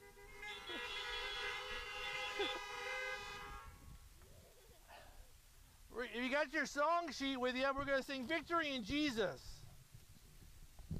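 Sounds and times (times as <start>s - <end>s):
chorus of car horns honking: 0.0s - 4.0s
speech: 6.1s - 9.5s.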